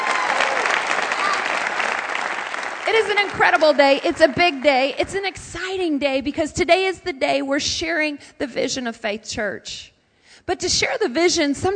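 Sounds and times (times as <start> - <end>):
church congregation applauding at a morning service: 0.0 - 5.1
speech: 2.9 - 11.7.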